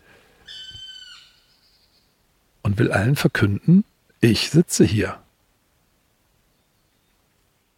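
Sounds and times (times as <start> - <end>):
black red-crested woodpecker calling: 0.4 - 2.1
speech: 2.7 - 5.2.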